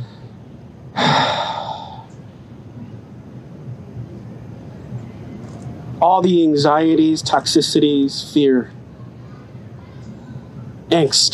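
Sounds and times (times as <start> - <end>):
hiss: 0.0 - 11.3
deep exhale during a guided breathing prayer: 1.0 - 2.1
speech: 6.0 - 8.8, 11.0 - 11.3.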